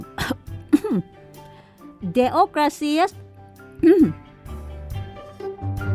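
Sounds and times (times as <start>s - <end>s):
person clearing throat: 0.1s - 1.1s, 3.8s - 4.2s
speech: 0.9s - 1.2s, 2.0s - 3.2s, 3.8s - 4.2s.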